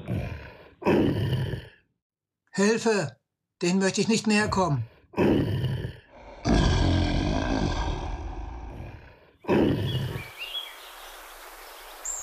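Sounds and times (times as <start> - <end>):
lions growling and roaring: 0.0 - 1.8, 4.6 - 10.3
speech: 0.9 - 1.2, 2.6 - 5.4
faint bird chirps: 9.8 - 12.2.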